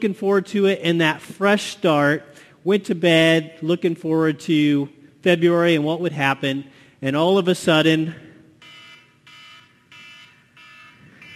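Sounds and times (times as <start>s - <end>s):
speech: 0.0s - 8.2s
phone timer alarm beeping: 8.6s - 11.3s.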